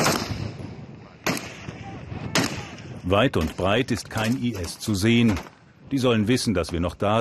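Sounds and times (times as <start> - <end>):
gunshots fired into the air: 0.0 - 5.6
dense rumbling outdoor background: 0.0 - 7.1
speech: 3.1 - 7.1.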